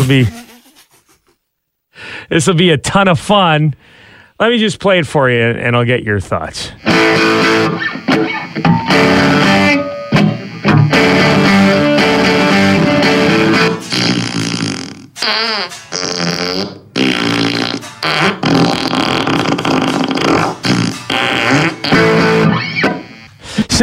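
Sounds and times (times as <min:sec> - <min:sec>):
speech: 0:00.1 - 0:00.4, 0:02.3 - 0:09.9
distorted guitar playing: 0:06.8 - 0:16.1, 0:16.7 - 0:23.4
buzzy fart sounds from a guitar effects pedal: 0:06.8 - 0:23.4.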